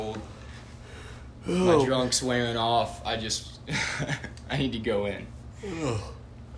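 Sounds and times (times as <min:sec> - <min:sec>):
person yawning: 0:01.4 - 0:01.8, 0:05.6 - 0:06.2
speech: 0:01.4 - 0:06.2.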